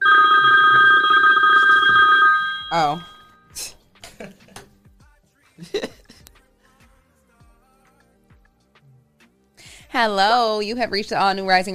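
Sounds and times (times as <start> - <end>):
telephone ringing with a bright warbling electronic tone: 0.0 - 3.5
speech: 2.7 - 3.8, 10.0 - 11.7
laughter: 4.0 - 4.7.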